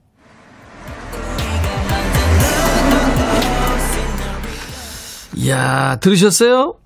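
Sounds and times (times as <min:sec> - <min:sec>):
car driving past with road rumble: 0:00.0 - 0:05.3
loud music with heavy bass beats inside a car: 0:00.9 - 0:05.0
speech: 0:05.5 - 0:06.8.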